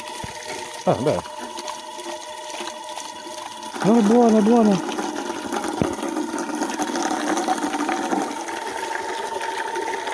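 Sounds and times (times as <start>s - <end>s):
steady stream of water running from a fountain: 0.0s - 10.1s
speech: 0.8s - 1.4s, 3.8s - 4.9s.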